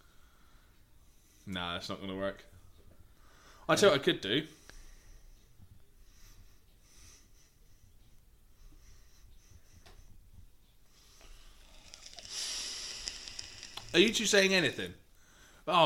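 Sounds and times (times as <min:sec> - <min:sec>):
person breathing into microphones: 0:00.0 - 0:01.5, 0:03.0 - 0:03.7, 0:04.5 - 0:10.2, 0:10.9 - 0:14.0, 0:15.1 - 0:15.7
low rumbling hiss: 0:00.0 - 0:15.8
speech: 0:01.5 - 0:02.6, 0:03.7 - 0:04.6, 0:14.0 - 0:15.0
person sniffing: 0:11.2 - 0:14.0.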